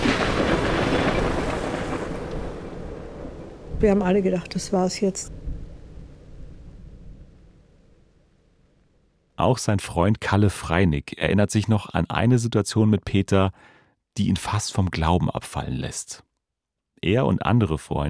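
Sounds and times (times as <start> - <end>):
heavy wind noise: 0.0 - 7.7
deep thunderous rumbling: 0.0 - 9.0
loud roaring storm at sea: 0.0 - 9.0
speech: 3.8 - 5.4, 9.4 - 16.3, 17.0 - 18.0.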